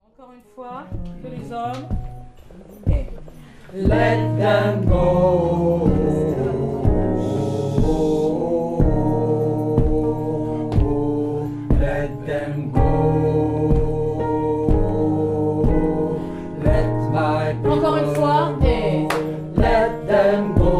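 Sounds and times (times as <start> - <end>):
man singing gospel part: 3.7 - 20.7.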